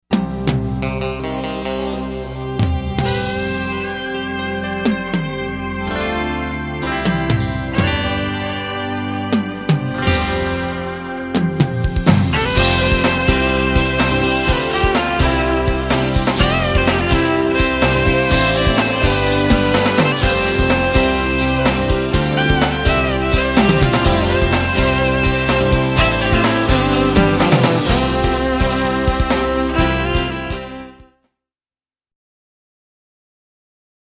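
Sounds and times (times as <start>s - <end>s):
fiddle rock music: 0.1s - 31.1s.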